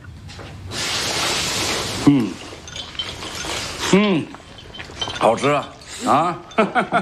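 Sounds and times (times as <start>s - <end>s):
steady hissing noise: 0.1s - 7.0s
bowls and chopsticks clinking on a table being set: 1.5s - 7.0s
speech: 3.9s - 4.4s, 5.2s - 7.0s.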